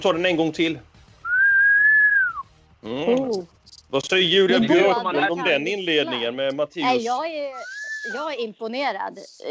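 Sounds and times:
speech: 0.0s - 0.9s, 2.8s - 9.4s
human whistle at a racetrack: 1.3s - 2.4s, 7.6s - 8.2s.

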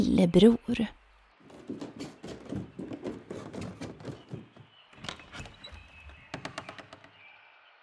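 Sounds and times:
speech: 0.0s - 1.0s
knocking on a door: 1.5s - 7.2s.

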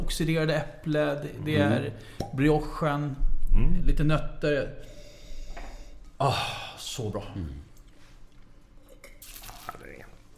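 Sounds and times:
speech: 0.1s - 5.0s, 6.2s - 7.7s
wine being poured out: 7.8s - 10.3s.

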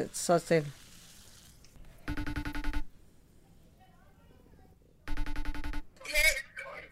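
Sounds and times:
speech: 0.0s - 0.8s
outgoing phone call ringback tone: 2.1s - 2.9s, 5.1s - 5.9s.

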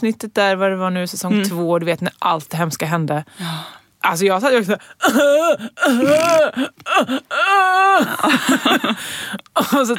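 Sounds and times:
speech: 0.0s - 9.9s
person loudly imitating wailing sobs: 5.0s - 9.0s.

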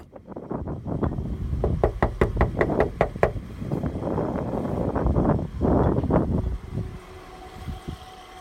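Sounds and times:
engine-like noise: 0.0s - 8.4s
outdoor wind: 0.0s - 8.4s
firm knocks on a factory door: 1.6s - 3.4s.

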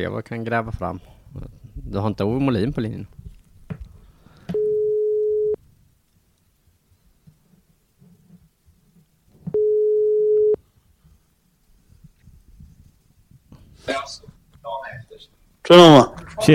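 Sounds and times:
speech: 0.0s - 3.2s, 15.2s - 16.5s
telephone ringback tones while placing a call: 4.5s - 5.6s, 9.6s - 10.6s.

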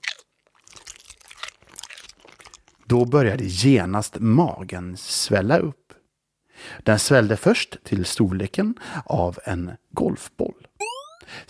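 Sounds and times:
monkey chewing on a banana in a shop: 0.0s - 3.1s
speech: 2.9s - 5.8s, 6.7s - 10.7s, 11.3s - 11.4s.

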